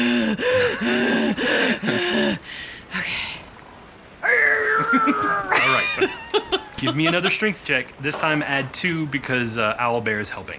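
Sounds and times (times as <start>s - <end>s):
person gasping for breath after overexertion: 0.0s - 2.9s
laughter: 0.4s - 2.4s, 4.6s - 7.7s
speech: 6.8s - 10.5s.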